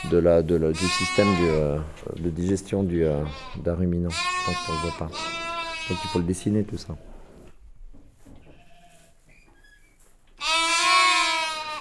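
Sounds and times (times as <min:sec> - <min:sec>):
sheep bleating: 0:00.0 - 0:01.8, 0:03.1 - 0:06.5, 0:10.4 - 0:11.7
speech: 0:00.0 - 0:07.1
farm noises: 0:00.0 - 0:11.7.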